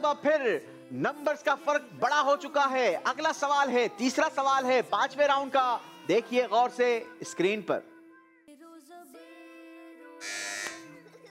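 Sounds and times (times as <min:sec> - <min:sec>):
speech: 0:00.0 - 0:07.9
loud harsh quiz show buzzer pressed by a team: 0:10.2 - 0:10.9
sustained electronic tones: 0:10.2 - 0:10.9.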